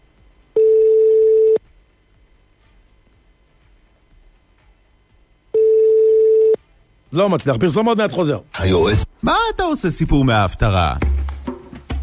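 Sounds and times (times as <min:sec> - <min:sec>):
telephone tones while a call is placed: 0:00.6 - 0:01.6, 0:05.5 - 0:06.6
speech: 0:07.2 - 0:11.2.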